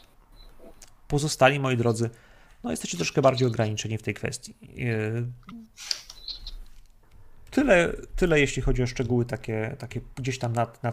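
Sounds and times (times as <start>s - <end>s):
speech: 1.1s - 6.0s, 7.6s - 10.9s
birds chirping overhead: 6.1s - 6.7s.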